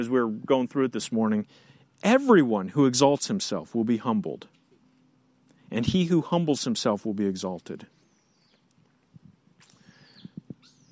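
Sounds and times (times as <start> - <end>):
speech: 0.0 - 4.6, 5.7 - 8.0
bird calling with whistle-like notes: 7.9 - 8.7, 9.6 - 10.9.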